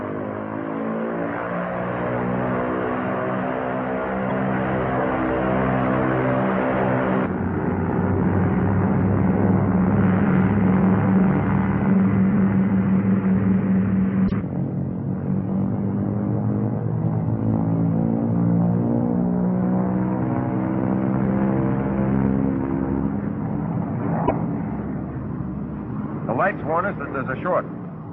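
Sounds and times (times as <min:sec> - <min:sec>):
propeller aircraft engines roaring at full throttle during a takeoff check: 0:00.0 - 0:28.1
speech: 0:27.2 - 0:27.7.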